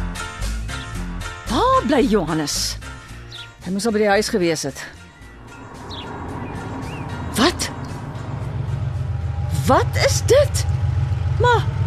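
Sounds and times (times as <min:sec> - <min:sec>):
speech: 0:01.5 - 0:02.9, 0:03.6 - 0:05.0, 0:09.7 - 0:10.8, 0:11.4 - 0:11.7
arriving car engine rumbling: 0:04.3 - 0:11.8.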